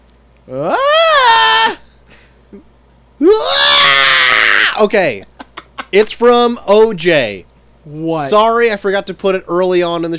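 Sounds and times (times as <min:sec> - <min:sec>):
speech: 0:00.5 - 0:00.9, 0:02.5 - 0:03.5, 0:04.8 - 0:05.3, 0:05.9 - 0:10.1
person screaming: 0:00.5 - 0:02.0, 0:03.2 - 0:04.9.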